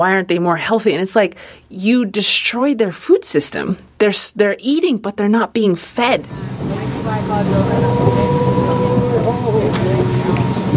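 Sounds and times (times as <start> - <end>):
speech: 0.0 - 8.5
small boat motor droning out across the water: 6.3 - 10.7.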